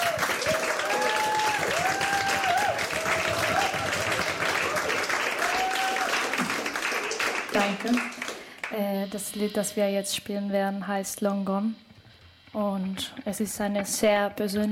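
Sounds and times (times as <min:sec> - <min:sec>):
faint whistles or cheers: 0:00.0 - 0:07.5
audience applause: 0:00.0 - 0:08.7
speech: 0:07.6 - 0:11.9, 0:12.5 - 0:14.6.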